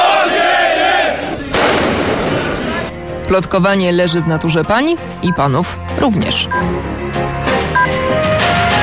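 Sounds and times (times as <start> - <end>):
crowd of trade union protesters shouting at a demonstration in Szczecin: 0.0 - 2.9
firecracker bangs: 1.3 - 2.9
speech: 3.3 - 8.7.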